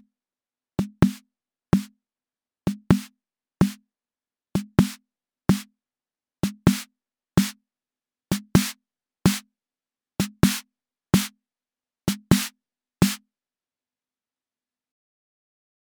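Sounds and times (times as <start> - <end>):
Akai Rhythm Wolf snare: 1.0 - 1.2, 2.9 - 3.8, 4.6 - 5.7, 6.5 - 7.5, 8.3 - 9.4, 10.2 - 10.6, 12.1 - 13.2.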